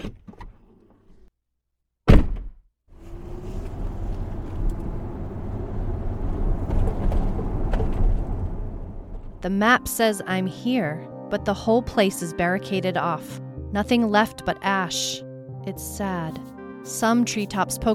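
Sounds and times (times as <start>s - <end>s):
rental car door slamming shut: 2.1s - 2.6s
rental car engine starting and driving off: 3.0s - 9.4s
speech: 9.4s - 17.9s.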